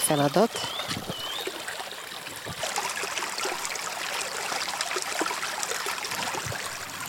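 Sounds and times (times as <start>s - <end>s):
gentle stream babbling over rocks: 0.0s - 7.0s
speech: 0.1s - 1.1s
faint bird chirp: 0.1s - 1.6s.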